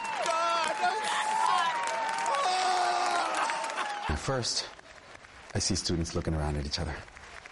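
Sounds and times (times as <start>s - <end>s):
large crowd cheering and shouting: 0.0s - 4.6s
scattered clapping: 0.0s - 7.4s
speech: 4.2s - 4.8s, 5.5s - 7.2s.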